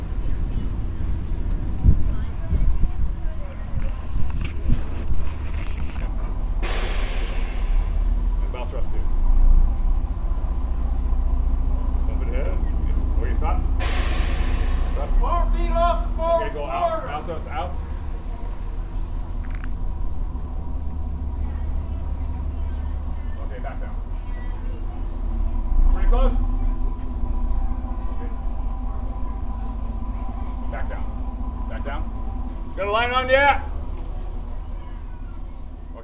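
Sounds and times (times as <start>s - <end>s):
faint indistinct voices: 0.0s - 36.0s
old ferry boat engine rumbling underway on the water: 0.0s - 36.0s
loud hiss: 6.6s - 8.6s, 13.8s - 19.0s.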